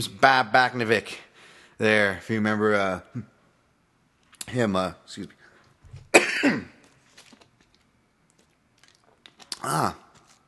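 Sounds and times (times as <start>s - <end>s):
speech: 0.0s - 3.3s, 4.5s - 5.4s, 6.4s - 6.8s, 9.6s - 10.0s
faint small noises: 0.9s - 10.4s
loud coughs: 6.1s - 6.8s.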